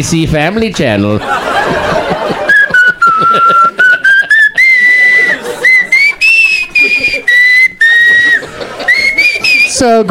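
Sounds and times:
speech: 0:00.0 - 0:02.3, 0:09.8 - 0:10.0
faint chuckling and laughter: 0:01.2 - 0:09.7
whistled slow yuletide tune from an album: 0:02.3 - 0:09.8.

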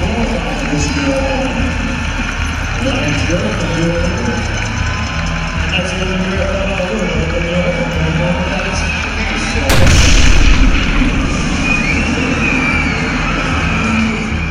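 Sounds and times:
crowd and street noise: 0:00.0 - 0:14.5
bomb explosion at a marathon finish-line crowd: 0:09.7 - 0:13.2.

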